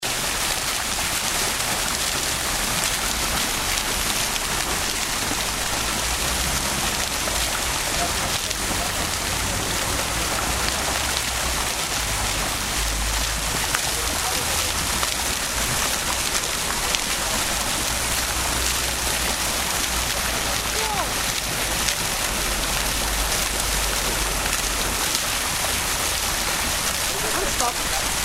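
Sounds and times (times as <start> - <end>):
fountain in the city: 0.0 - 28.2.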